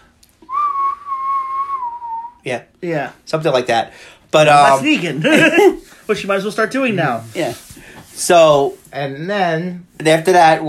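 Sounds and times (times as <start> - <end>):
person whistling a sustained wavering tone: 0.4 - 2.4
speech: 2.4 - 7.6, 8.2 - 10.6.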